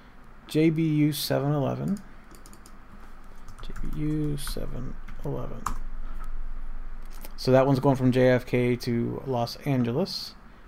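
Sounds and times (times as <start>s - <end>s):
speech: 0.5s - 2.1s, 3.8s - 5.8s, 7.4s - 10.4s
typing on a computer keyboard: 1.9s - 2.8s, 3.5s - 4.6s.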